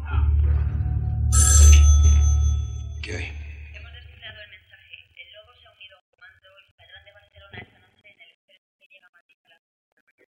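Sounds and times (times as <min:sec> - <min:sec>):
low rumbling hum: 0:00.0 - 0:04.4
telephone bell ringing: 0:01.3 - 0:03.6.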